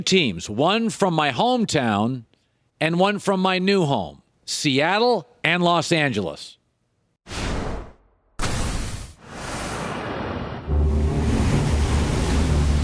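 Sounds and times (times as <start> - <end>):
speech: 0.0 - 6.6
heavy surf crashing: 9.2 - 12.8
steady roaring wash of churning sea water: 9.3 - 12.8
deep rumble under the surf: 10.6 - 12.8.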